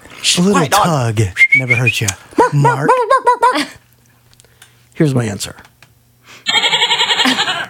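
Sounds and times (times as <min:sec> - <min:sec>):
speech: 0:00.3 - 0:03.8, 0:05.0 - 0:05.7
goat bleat sound effect: 0:06.5 - 0:07.6.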